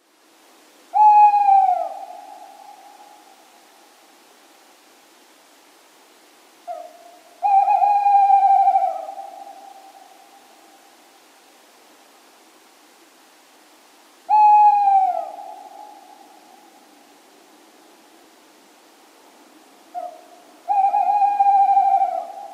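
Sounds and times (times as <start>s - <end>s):
tawny owl: 0.9s - 3.3s, 6.6s - 10.1s, 14.3s - 16.3s, 19.9s - 22.5s.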